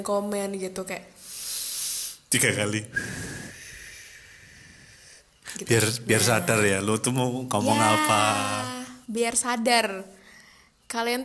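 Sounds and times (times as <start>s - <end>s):
speech: 0.0s - 1.4s, 2.3s - 3.3s, 5.5s - 10.2s, 10.9s - 11.2s
long deep breath drawn in and out: 1.2s - 2.2s, 2.9s - 5.6s.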